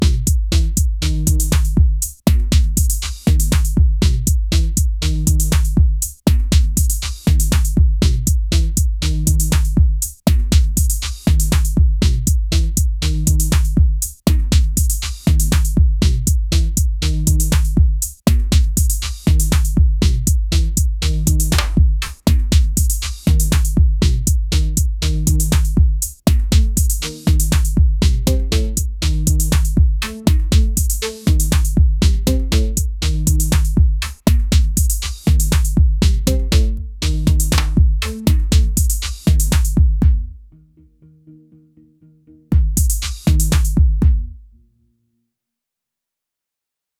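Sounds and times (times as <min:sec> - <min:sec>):
lo-fi music with drum: 0:00.0 - 0:40.4, 0:42.5 - 0:44.4.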